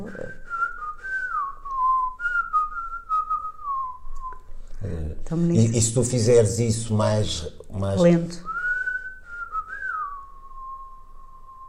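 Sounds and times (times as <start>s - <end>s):
person whistling a slow flowing melody: 0.0s - 4.5s, 8.5s - 11.6s
speech: 5.3s - 8.5s.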